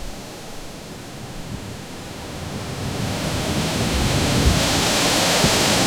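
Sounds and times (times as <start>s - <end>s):
strong sandstorm blowing in desert: 1.5s - 5.8s.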